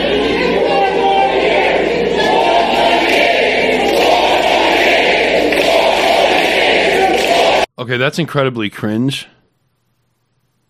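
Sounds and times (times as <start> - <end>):
large rally crowd chanting a slogan in unison: 0.0 - 7.7
speech: 7.8 - 9.4.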